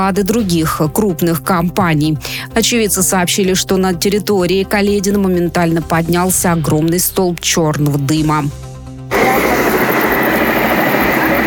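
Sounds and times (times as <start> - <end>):
speech: 0.0 - 8.7
aircraft taking off with loud steady engine roar: 9.1 - 11.4.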